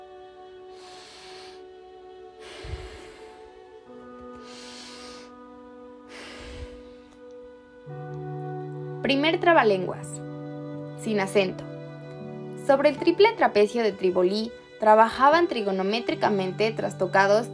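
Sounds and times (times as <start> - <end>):
slow deliberate chest breathing exercise: 0.7 - 7.7
speech: 9.0 - 10.1, 11.0 - 11.7, 12.7 - 17.5.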